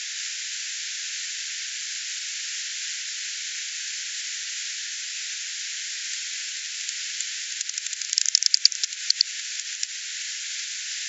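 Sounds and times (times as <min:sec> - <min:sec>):
steady hiss: 0:00.0 - 0:11.0
bat clicks: 0:06.9 - 0:09.9.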